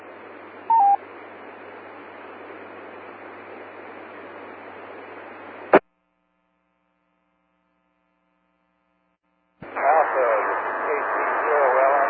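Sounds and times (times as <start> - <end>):
short clear electronic beep from a radio beacon: 0.7 - 1.0
steady hissing radio static: 9.6 - 12.0.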